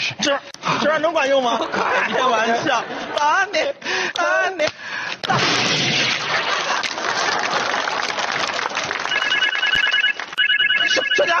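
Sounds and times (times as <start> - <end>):
speech: 0.2 - 6.6, 11.2 - 11.3
laughter: 1.3 - 4.6, 6.1 - 9.0, 10.8 - 11.3
telephone with repeating electronic ringtone: 9.0 - 11.3.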